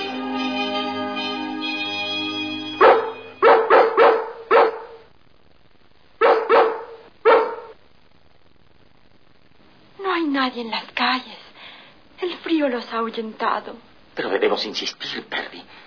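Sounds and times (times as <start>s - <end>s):
steady tonal hum: 0.0s - 3.4s
dogs barking in a nightly chain: 2.8s - 5.1s, 6.2s - 7.8s
speech: 10.4s - 11.4s, 12.6s - 15.7s.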